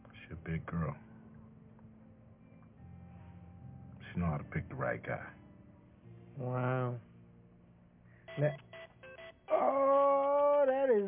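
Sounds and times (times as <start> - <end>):
speech: 0.5 - 1.1, 4.2 - 5.4, 6.4 - 7.1, 8.4 - 8.7, 10.9 - 11.0
phone ringtone: 8.3 - 9.8.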